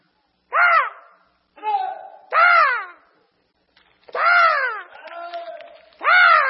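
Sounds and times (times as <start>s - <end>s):
person imitating raven caws: 0.5s - 3.1s, 4.2s - 4.9s, 6.0s - 6.4s.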